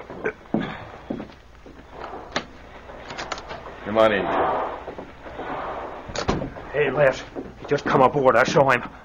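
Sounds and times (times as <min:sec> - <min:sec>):
cabin door opening with a click and creak aboard a boat: 0:01.9 - 0:07.8
speech: 0:03.9 - 0:04.7, 0:06.8 - 0:09.0.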